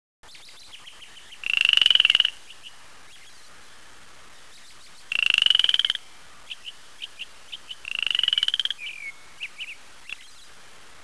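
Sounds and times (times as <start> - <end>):
frogbird calling: 1.1 - 3.3, 4.7 - 10.4.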